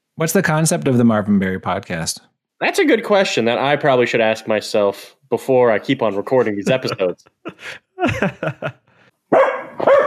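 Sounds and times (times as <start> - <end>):
speech: 0.2 - 10.0
laughter: 6.3 - 8.9
dog barking: 9.3 - 10.0.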